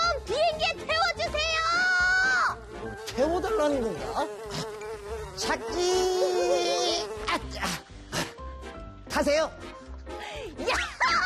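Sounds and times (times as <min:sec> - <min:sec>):
fly buzzing: 0:00.0 - 0:08.4
speech: 0:03.6 - 0:04.6, 0:09.2 - 0:09.7.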